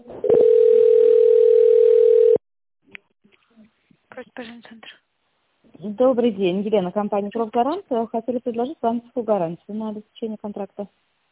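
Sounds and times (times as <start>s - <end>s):
steady telephone tone as call is transferred to an operator: 0.2s - 2.4s
speech: 5.9s - 11.1s.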